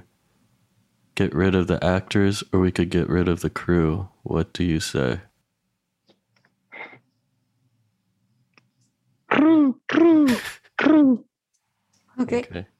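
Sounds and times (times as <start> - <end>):
speech: 1.2 - 5.3, 12.2 - 12.7
person imitating a bird with throaty squawks: 9.3 - 11.3.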